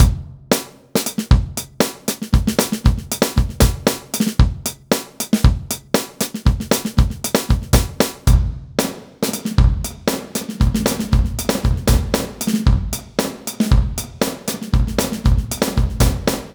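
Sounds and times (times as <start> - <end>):
drum loop: 0.0 - 16.5.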